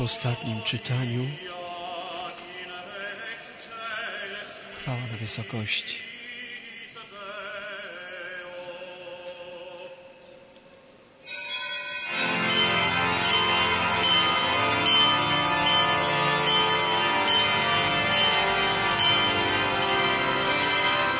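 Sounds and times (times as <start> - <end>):
speech: 0.0 - 1.6, 4.8 - 6.1
church bells ringing joyfully: 11.2 - 21.1.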